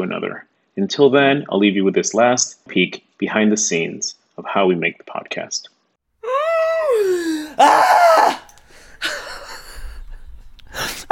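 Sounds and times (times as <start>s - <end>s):
speech: 0.0s - 5.7s, 7.0s - 8.4s
woman screaming: 6.2s - 9.6s.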